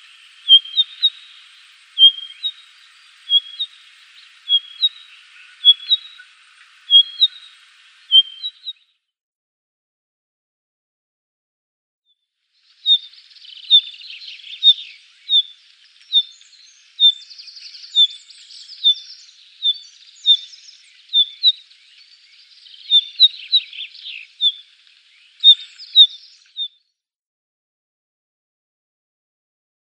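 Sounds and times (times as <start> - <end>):
blue rock thrush sharp high calls: 0.0 - 8.8, 12.8 - 21.7, 22.6 - 24.7, 25.3 - 26.8.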